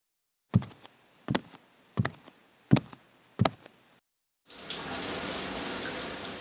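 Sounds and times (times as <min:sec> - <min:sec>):
sharp knocks: 0:00.6 - 0:03.7
shower water spraying in a morning routine: 0:04.5 - 0:06.3.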